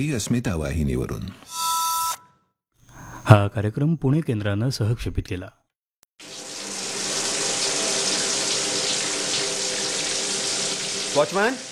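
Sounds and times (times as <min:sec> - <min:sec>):
speech: 0:00.0 - 0:01.6, 0:03.2 - 0:05.6, 0:11.2 - 0:11.7
water running from a tap: 0:06.2 - 0:11.7.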